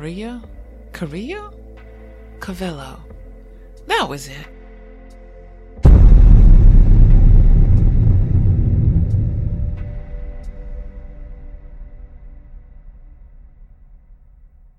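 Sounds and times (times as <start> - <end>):
speech: 0.0 - 1.6, 2.4 - 3.1, 3.9 - 4.6
echoing thunder-like crack with booming rumble: 5.8 - 11.3.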